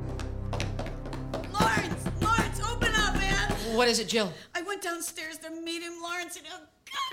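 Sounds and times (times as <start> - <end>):
sharp knocking on a door: 0.5 - 4.0
person speaking loudly and urgently: 1.5 - 7.1
speech: 3.8 - 7.1.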